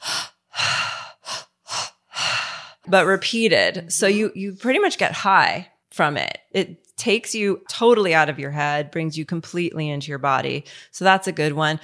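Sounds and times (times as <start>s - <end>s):
pranayama breathwork breathing: 0.0s - 3.2s
speech: 2.8s - 11.8s.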